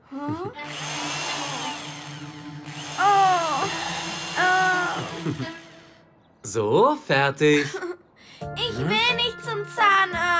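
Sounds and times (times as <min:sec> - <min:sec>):
speech: 0:00.2 - 0:01.2, 0:05.3 - 0:05.6, 0:06.5 - 0:07.8, 0:08.8 - 0:09.2
power drill boring a hole to hang a birdhouse: 0:00.6 - 0:06.0.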